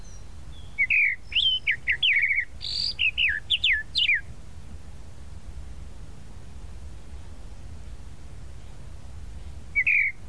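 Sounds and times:
tropical mockingbird song of clear downslurred whistles with a buzzy note: 0:00.0 - 0:04.3, 0:09.7 - 0:10.2.

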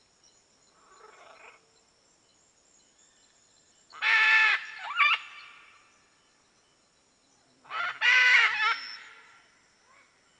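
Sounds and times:
red-and-green macaw giving harsh raspy squawks: 0:04.0 - 0:05.6, 0:07.7 - 0:09.2.

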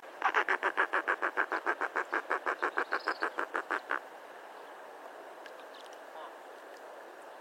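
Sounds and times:
firewood-gatherer song of harsh chattering notes: 0:00.3 - 0:03.9.

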